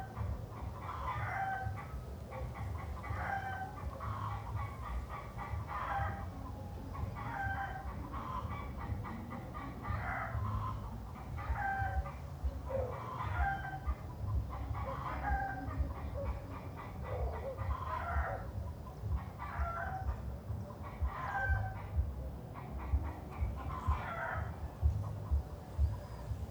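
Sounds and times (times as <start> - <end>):
chickens clucking in a city: 0.0 - 26.4.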